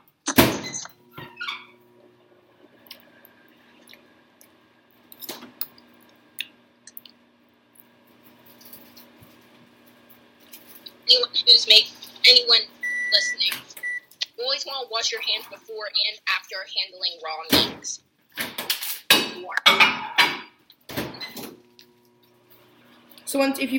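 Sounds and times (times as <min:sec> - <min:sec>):
microwave sharp electronic beeps: 0:00.4 - 0:04.2, 0:10.1 - 0:15.6, 0:20.9 - 0:22.9
microwave low hum while melting cheese on food: 0:00.4 - 0:16.2, 0:19.8 - 0:23.6
speech: 0:11.6 - 0:12.7, 0:14.6 - 0:18.1, 0:23.3 - 0:23.7.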